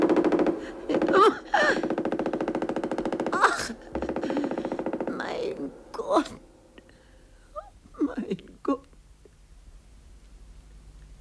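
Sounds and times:
machine gun fire in a wartime scene by a meadow: 0.0 - 5.8.

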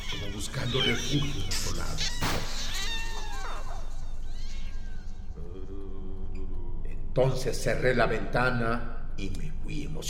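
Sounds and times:
small kittens meowing as they creep under a table: 0.0 - 5.3
speech: 0.2 - 2.4, 7.2 - 10.0.

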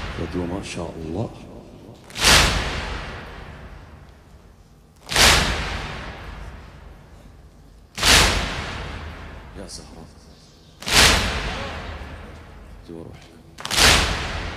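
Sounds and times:
mourners beating their chests: 0.0 - 14.5
speech: 0.2 - 1.5, 9.6 - 10.4, 12.9 - 13.4.

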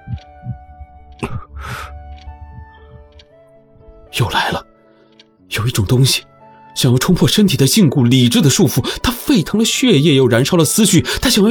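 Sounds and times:
fast heartbeat: 0.0 - 3.1
speech: 5.7 - 11.4.

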